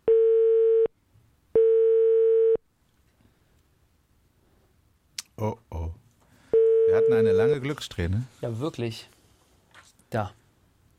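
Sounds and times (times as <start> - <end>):
ringback tone of an outgoing telephone call: 0.1 - 0.9, 1.6 - 2.6, 6.5 - 7.4
speech: 5.4 - 5.6, 7.1 - 9.2, 10.1 - 10.4.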